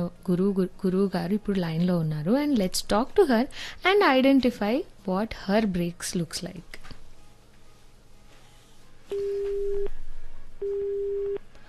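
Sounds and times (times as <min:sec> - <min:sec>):
speech: 0:00.0 - 0:06.8, 0:09.1 - 0:10.0
telephone busy signal after a dropped call on a radio phone-in: 0:09.1 - 0:10.0, 0:10.6 - 0:11.4.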